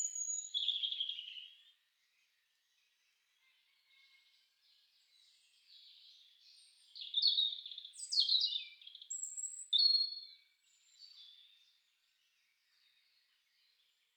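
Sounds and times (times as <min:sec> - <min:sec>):
European robin singing: 0:00.0 - 0:01.7, 0:05.1 - 0:11.8.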